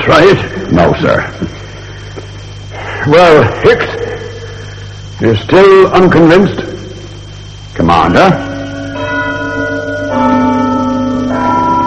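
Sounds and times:
speech: 0.0s - 1.6s, 3.0s - 4.0s, 5.2s - 6.8s, 7.8s - 9.1s
church clock bell striking the quarter: 7.9s - 11.8s.

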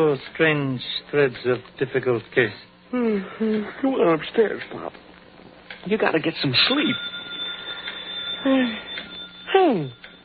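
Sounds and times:
speech: 0.0s - 5.1s, 5.8s - 7.1s, 8.4s - 10.1s
low steady hum: 0.0s - 10.2s
telephone ringing: 6.6s - 10.2s.

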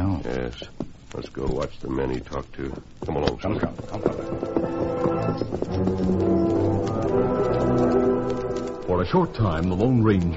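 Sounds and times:
horse hooves clip-clopping: 0.0s - 10.3s
speech: 0.2s - 10.3s
sustained musical tones: 3.9s - 9.8s.

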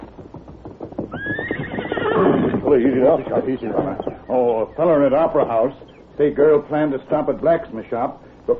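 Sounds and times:
faint scuffle of hooves: 0.0s - 8.2s
horse whinnying: 1.0s - 4.7s
speech: 2.7s - 8.5s.

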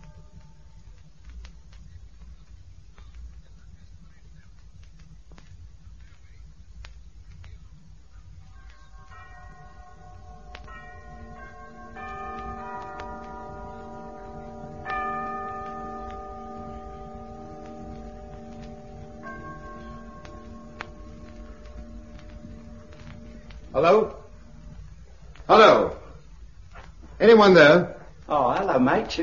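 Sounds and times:
faint clock ticking: 0.0s - 29.2s
low hum: 0.0s - 29.2s
clock striking the hour with ringing chimes: 8.5s - 26.2s
speech: 23.8s - 24.2s, 25.5s - 26.0s, 27.2s - 29.2s.

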